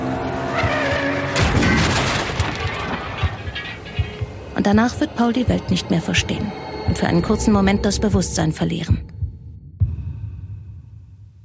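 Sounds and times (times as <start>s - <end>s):
car tires screeching: 0.0s - 4.5s
old car crashing into the front side of another car: 0.6s - 4.2s
scattered bangs and rattling debris from a car collision: 0.7s - 4.5s
speech: 4.7s - 9.1s.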